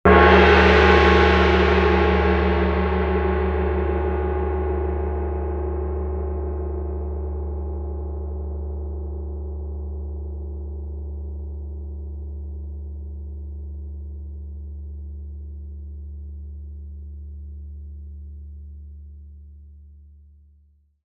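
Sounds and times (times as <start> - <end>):
percussion: 0.0 - 8.2.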